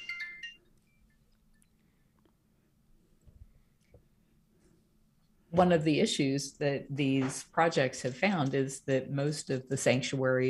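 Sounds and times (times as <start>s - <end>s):
electronic phone ringtone: 0.0s - 1.1s
quiet hum: 0.0s - 10.4s
speech: 5.6s - 10.4s.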